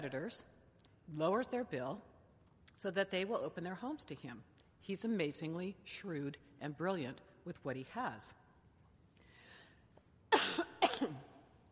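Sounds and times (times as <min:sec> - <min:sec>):
speech: 0:00.0 - 0:02.1, 0:02.8 - 0:08.4
person coughing: 0:10.3 - 0:11.4.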